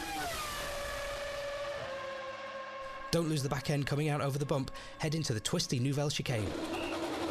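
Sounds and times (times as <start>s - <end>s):
racing car engine roaring at full throttle through a tunnel: 0.0s - 4.1s, 6.4s - 7.2s
speech: 3.1s - 6.8s.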